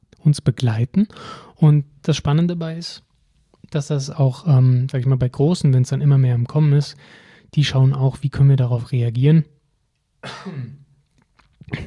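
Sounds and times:
speech: 0.2 - 3.1, 3.7 - 9.5, 10.2 - 10.8, 11.7 - 11.8
person with a cold coughing: 10.2 - 11.0, 11.7 - 11.8.

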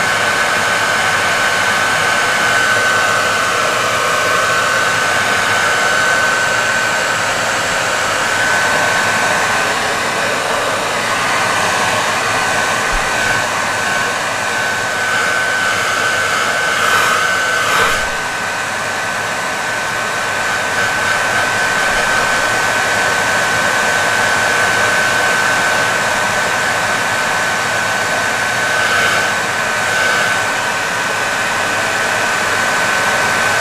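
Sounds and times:
hair dryer blowing with a thin high whine: 0.0 - 33.5.

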